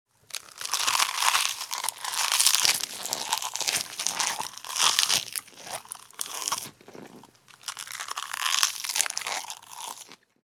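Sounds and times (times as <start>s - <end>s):
crunchy munching of vegetables: 0.2s - 10.4s.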